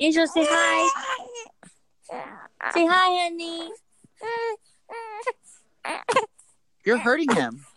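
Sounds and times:
speech: 0:00.0 - 0:01.3, 0:02.1 - 0:07.7
baby boy crying: 0:00.2 - 0:03.1, 0:04.2 - 0:06.4.

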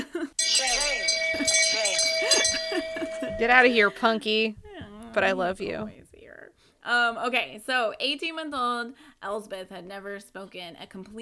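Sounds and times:
bell struck and ringing: 0:00.4 - 0:04.2
speech: 0:02.7 - 0:04.6, 0:05.2 - 0:06.0, 0:06.8 - 0:11.2.

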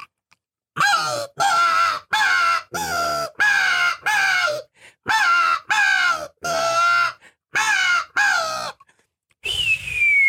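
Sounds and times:
harsh crow caws made on a hunting call imitating a crow fight: 0:00.8 - 0:08.8.

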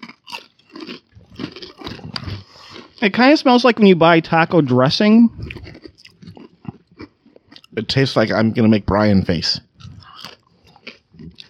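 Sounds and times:
crunching large ridged taco-seasoned chips being bitten and chewed: 0:00.0 - 0:03.7, 0:05.4 - 0:08.1, 0:09.8 - 0:11.4
speech: 0:03.0 - 0:05.5, 0:07.8 - 0:09.7.

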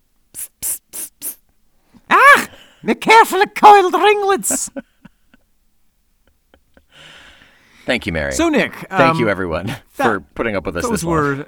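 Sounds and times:
spray bottle being pumped: 0:00.4 - 0:01.4
speech: 0:02.8 - 0:04.9, 0:07.9 - 0:11.4.

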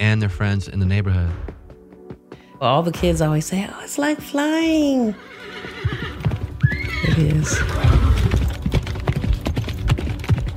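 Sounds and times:
speech: 0:00.0 - 0:01.6, 0:02.6 - 0:06.1, 0:07.0 - 0:08.3
horse hooves clip-clopping on a hard surface: 0:05.4 - 0:10.5.

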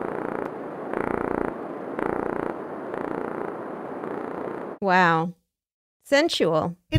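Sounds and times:
Gulf corvina fish mating call: 0:00.0 - 0:04.8
speech: 0:04.8 - 0:05.4, 0:06.0 - 0:06.9.

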